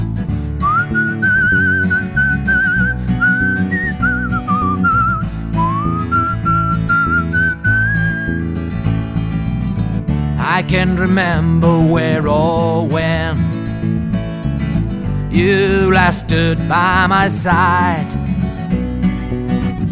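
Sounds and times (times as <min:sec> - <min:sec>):
instrumental music backing: 0:00.0 - 0:19.9
person whistling a tune: 0:00.6 - 0:08.5
speech: 0:10.7 - 0:13.5, 0:15.4 - 0:18.2.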